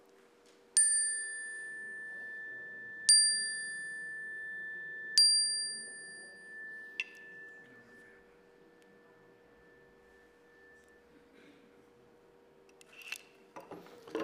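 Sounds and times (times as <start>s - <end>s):
faint low hum: 0.0s - 14.1s
chime strikes: 0.8s - 11.2s.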